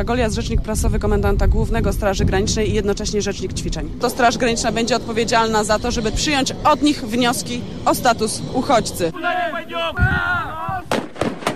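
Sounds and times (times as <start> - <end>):
speech: 0.0 - 10.8
stun grenades exploding during a border guard exercise: 10.9 - 11.5.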